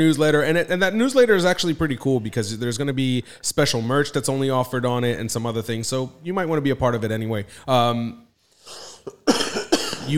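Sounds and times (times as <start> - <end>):
speech: 0.0 - 9.5
raspy breath: 8.4 - 9.2
harsh cough: 8.8 - 10.1.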